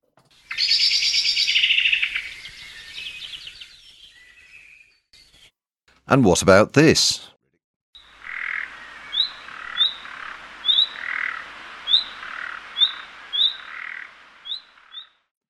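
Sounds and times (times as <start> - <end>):
blackbird alarm call: 0.4 - 5.5, 8.0 - 15.2
speech: 6.1 - 7.3
nightingale rasping frog-like growl call: 8.0 - 15.1.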